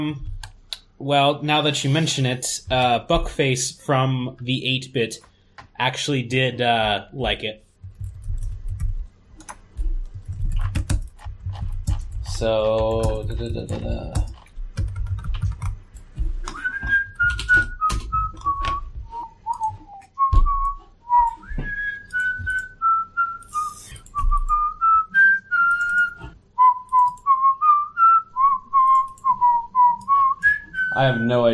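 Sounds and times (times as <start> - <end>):
speech: 0.0 - 0.3, 1.0 - 7.6, 12.4 - 14.3
rapid clicking of a computer keyboard: 7.8 - 16.6, 25.6 - 26.1, 28.8 - 29.3
person whistling a wandering high melodic line: 16.5 - 31.4.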